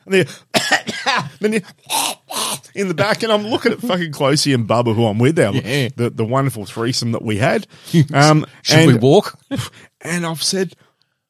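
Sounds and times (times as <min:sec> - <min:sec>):
speech: 0:00.1 - 0:02.1, 0:02.8 - 0:10.9
person vocally imitating a fit of coughing among bus passengers: 0:00.6 - 0:02.6.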